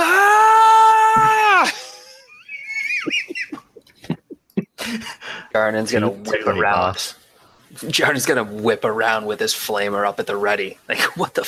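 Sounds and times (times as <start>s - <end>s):
voice imitating a charging warrior's scream: 0.0s - 2.0s
laughter: 1.6s - 5.3s
speech: 5.6s - 11.4s.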